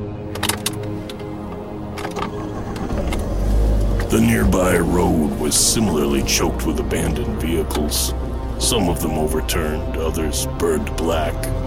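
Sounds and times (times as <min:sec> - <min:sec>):
sharp mechanical clicks and rattles: 0:00.3 - 0:04.1
large SUV engine idling in a field: 0:00.8 - 0:10.4
speech: 0:04.1 - 0:11.6.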